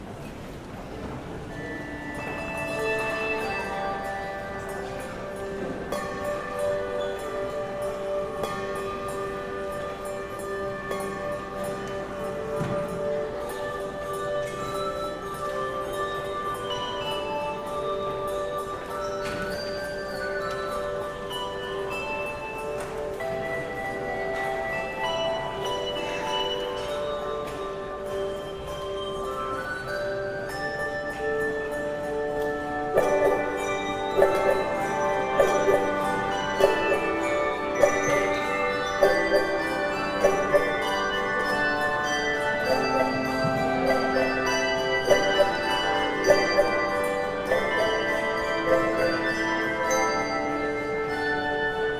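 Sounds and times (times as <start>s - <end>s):
handbells ringing: 1.3s - 51.9s.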